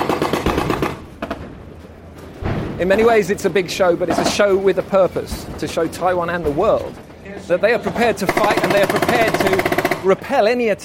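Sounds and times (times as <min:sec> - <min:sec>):
burst of machine gun fire: 0:00.0 - 0:01.4, 0:08.2 - 0:10.2
heavy shots, possibly cannon fire, echoing across an open area: 0:00.0 - 0:01.5, 0:08.0 - 0:10.4
speech: 0:02.8 - 0:10.8.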